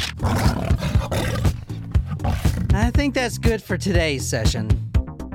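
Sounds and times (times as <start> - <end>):
person imitating a tiger roar: 0.2 - 2.9
speech: 2.9 - 4.9.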